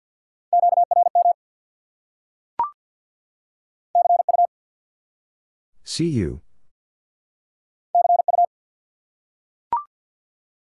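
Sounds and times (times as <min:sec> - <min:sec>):
Morse code beeps at 50 words per minute in a mid-pitched tone: 0:00.6 - 0:01.4, 0:04.0 - 0:04.5, 0:08.0 - 0:08.5
speech: 0:05.9 - 0:06.5.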